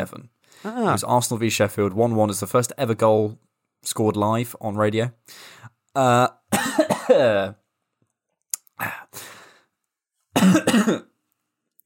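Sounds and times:
speech: 0.0 - 7.6, 8.8 - 9.3, 10.8 - 11.1
person clearing throat: 6.5 - 7.4, 10.4 - 11.1
person coughing after something lodges in the throat: 6.5 - 7.5, 10.4 - 11.1.

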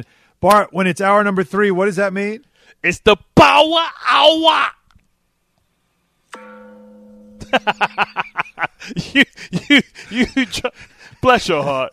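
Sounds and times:
speech: 0.0 - 4.8, 7.5 - 11.9
struck gong sound effect: 6.4 - 8.7
rhythmic laughter: 7.4 - 11.9.

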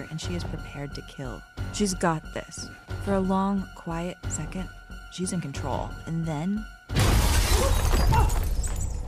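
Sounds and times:
speech: 0.0 - 6.8, 7.6 - 8.5
glass window shattering: 7.0 - 9.0.

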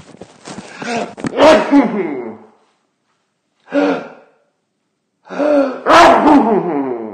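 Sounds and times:
person gasping: 0.7 - 2.4, 3.6 - 4.4, 5.2 - 5.9
sneeze: 1.4 - 2.0, 5.6 - 6.9.

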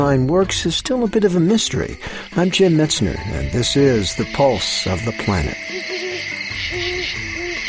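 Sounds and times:
speech: 0.1 - 5.9
owl hooting: 3.2 - 7.6.

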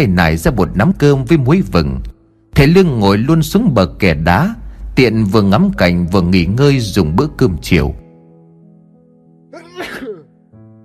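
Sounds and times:
speech: 0.0 - 8.0
steady soft music: 0.0 - 10.8
loud explosive sneeze: 9.5 - 10.3.

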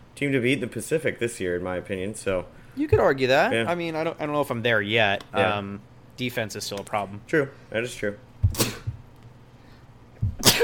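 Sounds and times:
speech: 0.2 - 8.8
sharp breathy sneezes: 8.5 - 9.0, 10.3 - 10.6.

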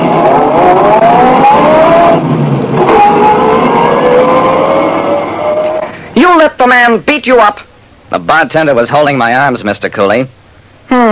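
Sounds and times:
car engine revving and accelerating away: 0.0 - 6.0
speech: 7.2 - 11.1.

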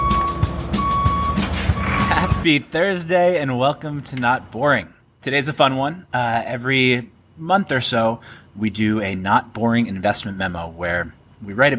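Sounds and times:
dump truck reversing alarm beeping at a construction site: 0.0 - 2.5
heavy rumble of a dump truck engine: 0.0 - 2.5
speech: 2.4 - 11.7.

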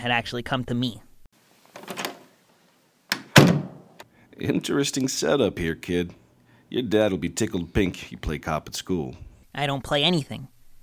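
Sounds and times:
speech: 0.0 - 1.1, 4.4 - 10.5
office door handle rattling: 1.8 - 2.2, 3.1 - 3.8
office door thud: 1.8 - 2.3, 3.1 - 4.0
office door latch click: 3.1 - 4.0.

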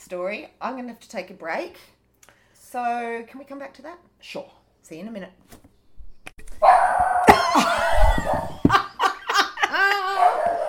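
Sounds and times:
speech: 0.1 - 2.0, 2.7 - 5.6
dog barking with whiny yelping tones: 6.5 - 8.6, 9.9 - 10.6.

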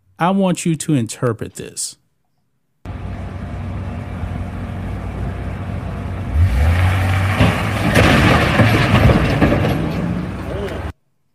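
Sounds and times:
speech: 0.2 - 2.0
steady rumbling noise: 2.9 - 10.9
U-Haul truck engine: 2.9 - 11.0
U-Haul truck crashing into a security gate: 6.3 - 10.9
clattering debris from a crash: 6.3 - 10.9.

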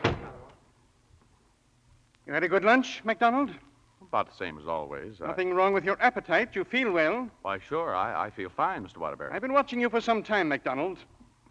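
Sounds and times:
solid door shutting with a heavy thud: 0.0 - 0.5
speech: 2.3 - 11.5.

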